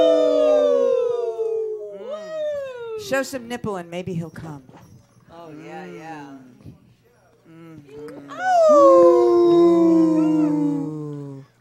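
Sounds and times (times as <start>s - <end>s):
person imitating a wolf howl with yelps: 0.0s - 3.2s, 8.3s - 11.5s
speech: 3.1s - 4.8s, 5.5s - 6.8s, 7.8s - 9.3s.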